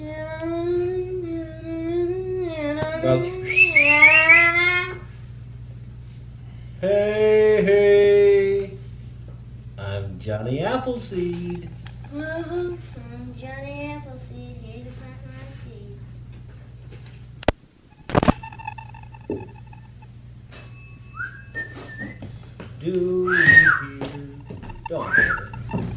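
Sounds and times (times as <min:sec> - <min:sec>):
low steady hum: 0:00.0 - 0:25.9
speech: 0:03.0 - 0:03.6, 0:10.8 - 0:12.8
shorter whistled tones and chirps: 0:03.4 - 0:04.6, 0:21.2 - 0:22.2, 0:25.0 - 0:25.6
train whistle: 0:03.4 - 0:04.7, 0:23.3 - 0:24.0, 0:25.0 - 0:25.5.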